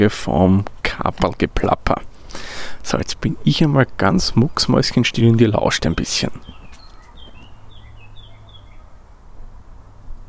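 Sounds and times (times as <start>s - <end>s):
speech: 0.0s - 6.6s
bird chirping in short high whistled notes: 3.4s - 9.2s.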